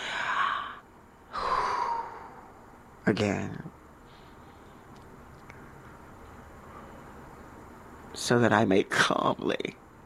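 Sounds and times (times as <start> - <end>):
slow deep breath: 0.0 - 2.9
speech: 3.1 - 3.8, 8.3 - 9.8.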